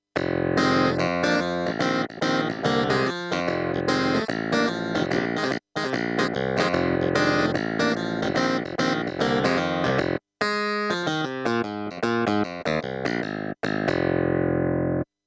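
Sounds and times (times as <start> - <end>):
Kurzweil stage piano clavinet: 0.2 - 14.0.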